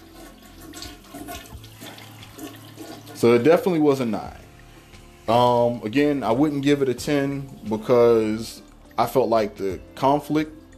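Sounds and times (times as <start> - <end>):
toilet flushing: 0.0 - 8.6
speech: 3.2 - 4.4, 5.3 - 10.6.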